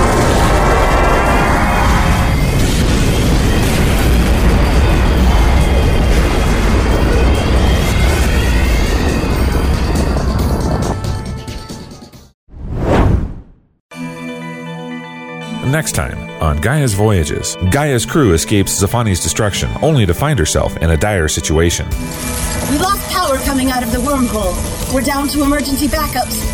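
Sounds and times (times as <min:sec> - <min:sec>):
spaceship jump drive engaging with roaring whoosh and deep rumble: 0:00.0 - 0:11.1
speech: 0:15.8 - 0:26.5.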